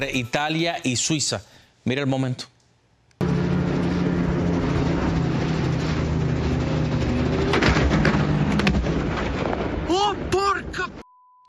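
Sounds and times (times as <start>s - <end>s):
speech: 0.0s - 2.6s
helicopter engine and rotor roar: 3.2s - 8.7s
helicopter hitting cable-car wires with cracking impacts: 4.5s - 10.8s.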